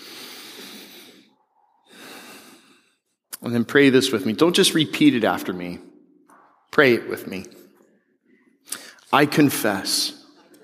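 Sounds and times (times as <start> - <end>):
deep breath in and out: 0.0 - 3.3
speech: 3.4 - 5.9, 6.8 - 7.6, 9.1 - 10.2.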